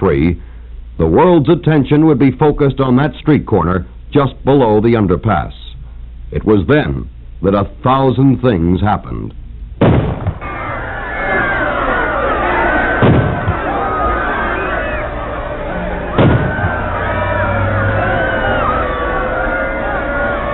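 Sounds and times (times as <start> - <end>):
speech: 0.0 - 5.6, 6.3 - 9.4
sharp loud bangs: 9.8 - 10.6, 12.8 - 13.7, 15.7 - 18.0
panicked crowd screaming and shouting at shooting of the President of the United States: 10.4 - 20.5.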